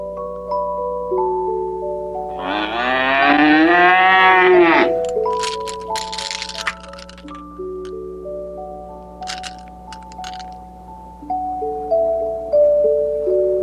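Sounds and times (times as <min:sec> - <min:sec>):
soft sustained musical backdrop: 0:00.0 - 0:13.6
cow mooing: 0:02.3 - 0:05.0
scattered rattling: 0:04.9 - 0:08.0, 0:09.2 - 0:10.6.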